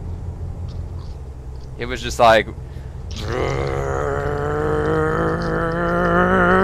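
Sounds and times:
speech: 1.8s - 3.8s
voice imitating a truck engine revving out of control: 3.1s - 6.6s.

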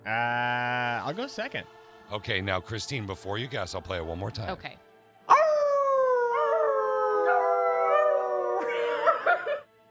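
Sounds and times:
speech: 0.1s - 0.4s, 1.1s - 4.9s
dog or wolf howling: 5.3s - 9.4s
laughter: 8.6s - 9.7s.

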